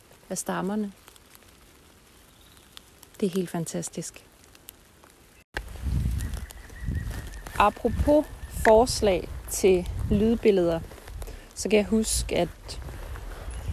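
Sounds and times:
scattered raindrops falling through bare trees: 0.0 - 13.7
speech: 0.3 - 1.1, 3.2 - 4.3, 7.6 - 10.9, 11.6 - 12.8
deeper rumbling gusts: 5.6 - 13.7.

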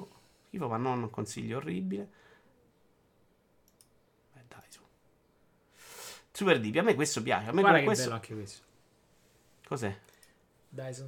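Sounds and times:
speech: 0.6 - 2.3, 6.4 - 8.7, 9.7 - 10.1, 10.7 - 11.0
computer mouse clicks: 3.6 - 4.0, 10.0 - 10.4.

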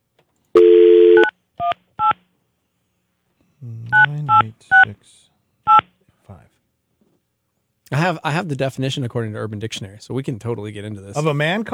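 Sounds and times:
phone dial tone: 0.6 - 2.1
speech: 7.9 - 11.7.

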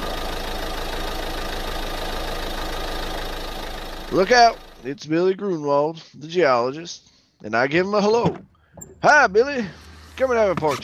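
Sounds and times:
car engine pulling up and idling at a rig at night: 0.0 - 4.9, 8.2 - 10.8
speech: 4.1 - 10.8.

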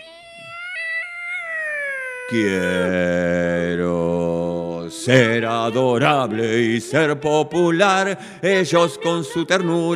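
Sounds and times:
long drawn-out cat meow: 0.0 - 2.9
speech: 2.3 - 4.3, 4.9 - 9.9.

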